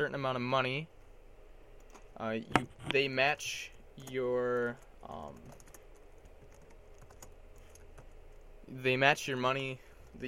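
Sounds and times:
speech: 0:00.0 - 0:01.0, 0:02.2 - 0:05.6, 0:08.7 - 0:10.2
typing on a computer keyboard: 0:04.0 - 0:08.1.

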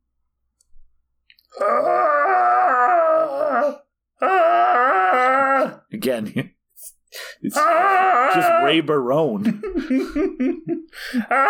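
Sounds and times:
human voice imitating Godzilla's roar: 0:01.5 - 0:05.9, 0:07.5 - 0:09.0
speech: 0:06.0 - 0:11.4
laughter: 0:09.3 - 0:10.9.

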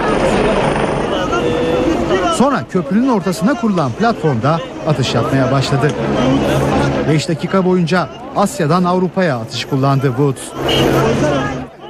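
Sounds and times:
helicopter landing with rotor and engine roar: 0:00.0 - 0:02.4
speech: 0:02.4 - 0:11.7.

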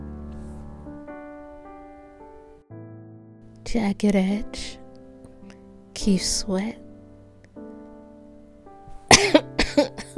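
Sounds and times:
speech: 0:03.6 - 0:04.8, 0:06.0 - 0:06.8
person coughing: 0:09.1 - 0:10.1.

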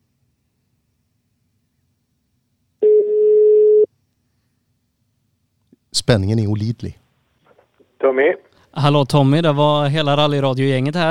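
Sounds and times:
landline telephone ringback tone: 0:02.8 - 0:03.9
speech: 0:06.1 - 0:07.0, 0:08.1 - 0:11.0.

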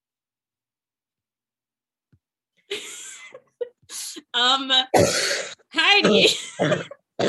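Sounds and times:
speech: 0:04.4 - 0:07.2
dry coughing fit: 0:04.9 - 0:07.2.

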